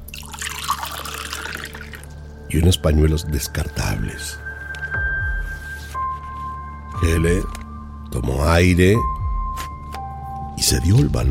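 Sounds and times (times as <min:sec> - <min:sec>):
water poured into a glass: 0:00.0 - 0:02.4
speech: 0:02.5 - 0:04.5, 0:07.0 - 0:09.1, 0:10.7 - 0:11.3.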